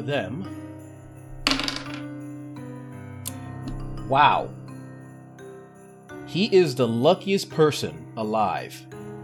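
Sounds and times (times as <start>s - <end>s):
speech: 0.0s - 0.6s, 4.1s - 4.6s, 6.3s - 9.0s
dice rolled for damage in a tabletop game clattering across a hard surface: 1.4s - 2.0s.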